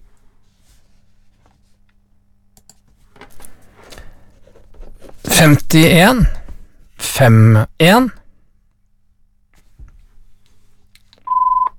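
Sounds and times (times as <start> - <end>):
speech: 5.4 - 6.4, 7.1 - 8.2
telephone ringing with a short electronic tone: 11.3 - 11.7.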